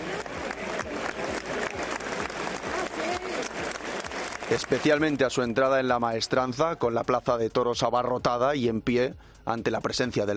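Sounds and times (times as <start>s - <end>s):
large crowd applauding in a packed bullring in Seville: 0.0s - 6.0s
speech: 4.5s - 10.3s.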